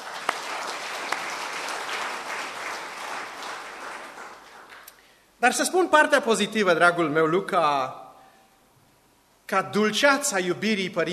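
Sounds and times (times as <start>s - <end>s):
crowd clapping: 0.0s - 5.0s
speech: 5.4s - 8.0s, 9.5s - 11.1s.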